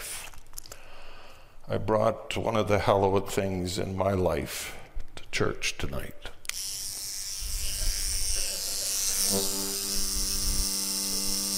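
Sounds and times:
speech: 0:01.7 - 0:04.8, 0:05.4 - 0:06.4
electric toothbrush buzzing in a church: 0:06.5 - 0:11.5.

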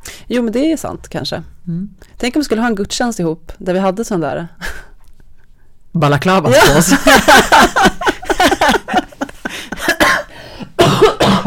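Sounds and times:
speech: 0:00.3 - 0:04.9, 0:06.0 - 0:07.9
laughter: 0:06.5 - 0:10.2
person coughing: 0:09.8 - 0:11.4.

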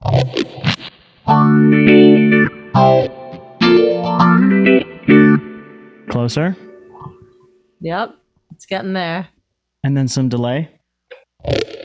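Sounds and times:
electric guitar through 90s Small Stone version 4 phaser pedal with reverb: 0:00.0 - 0:07.4
speech: 0:02.8 - 0:03.1, 0:06.2 - 0:07.2, 0:07.8 - 0:10.8, 0:11.4 - 0:11.8.

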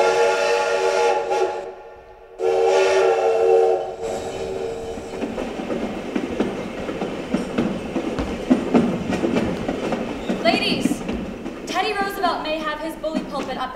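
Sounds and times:
steam train whistle: 0:00.0 - 0:05.1
rolling train rumbling and clattering: 0:03.8 - 0:13.7.

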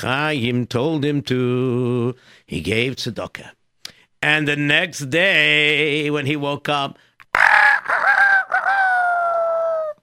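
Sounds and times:
speech: 0:00.0 - 0:03.6, 0:04.2 - 0:07.6
rooster crowing: 0:07.4 - 0:10.0.

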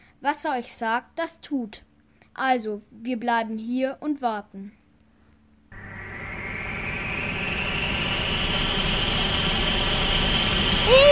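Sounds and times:
speech: 0:00.2 - 0:04.8
powerful rushing storm wind roaring: 0:05.8 - 0:11.1.

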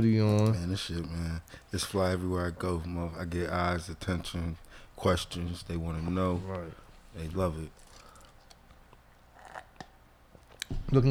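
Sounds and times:
speech: 0:00.0 - 0:07.8
person sipping a thick smoothie: 0:07.7 - 0:10.7.

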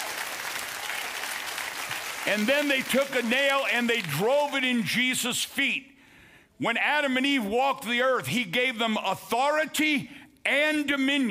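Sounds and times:
audience applause: 0:00.0 - 0:04.6
speech: 0:02.3 - 0:05.9, 0:06.6 - 0:11.2.

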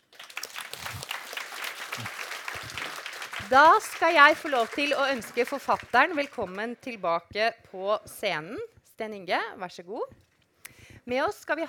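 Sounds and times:
room full of people applauding: 0:00.0 - 0:06.6
speech: 0:03.4 - 0:10.2, 0:11.1 - 0:11.6.

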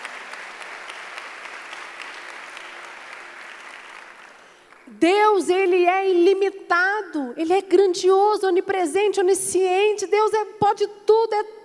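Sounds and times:
church audience applauding during a sermon: 0:00.0 - 0:04.9
speech: 0:04.9 - 0:11.6.

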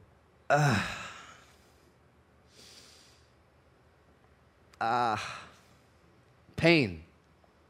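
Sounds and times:
speech: 0:00.5 - 0:01.0, 0:04.8 - 0:05.4, 0:06.6 - 0:07.0
voice imitating a groan as a painful breath: 0:00.5 - 0:01.4, 0:04.8 - 0:05.5.

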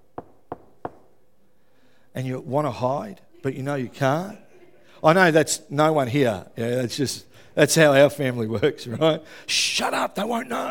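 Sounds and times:
knocking on the door of a home: 0:00.1 - 0:01.1
speech: 0:02.2 - 0:04.4, 0:05.0 - 0:10.6
laughter: 0:03.3 - 0:05.3.

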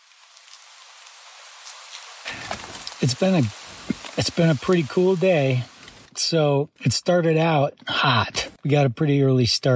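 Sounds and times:
steady rain falling on a tent during an all-day rain: 0:00.0 - 0:06.3
speech: 0:03.0 - 0:09.7.

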